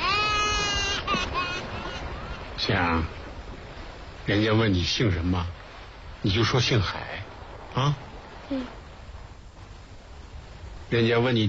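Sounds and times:
child crying: 0:00.0 - 0:02.5
speech: 0:02.7 - 0:03.2, 0:04.3 - 0:05.6, 0:06.2 - 0:07.2, 0:07.8 - 0:08.8, 0:10.9 - 0:11.4.

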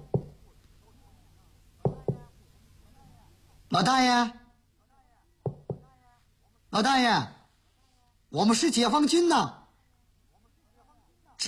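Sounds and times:
sharp knocks on a door: 0:00.0 - 0:00.4, 0:01.8 - 0:02.3, 0:05.4 - 0:05.9
speech: 0:03.8 - 0:04.4, 0:06.7 - 0:07.4, 0:08.3 - 0:09.6.

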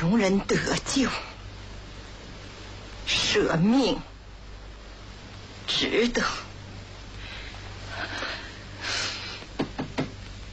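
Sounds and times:
soft breathy hiss: 0:00.0 - 0:10.5
speech: 0:00.1 - 0:01.3, 0:03.3 - 0:04.1, 0:05.8 - 0:06.4
knocking on a door: 0:09.6 - 0:10.2.

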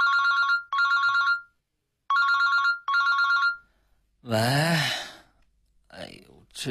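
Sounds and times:
mobile phone ringing: 0:00.0 - 0:03.7
speech: 0:04.2 - 0:05.0.

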